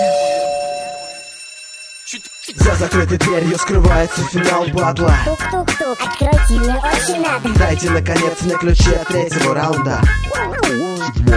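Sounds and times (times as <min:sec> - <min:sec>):
doorbell electronic chime: 0:00.0 - 0:04.6
speech: 0:02.1 - 0:11.3.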